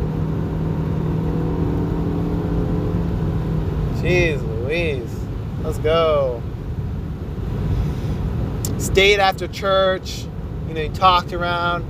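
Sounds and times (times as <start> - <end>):
car engine revving and accelerating: 0.0 - 9.0
speech: 4.0 - 6.4, 8.8 - 11.8.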